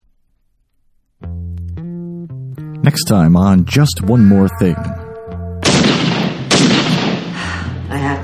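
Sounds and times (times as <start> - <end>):
speech: 2.8 - 5.0
gunshots upstairs: 5.6 - 7.5.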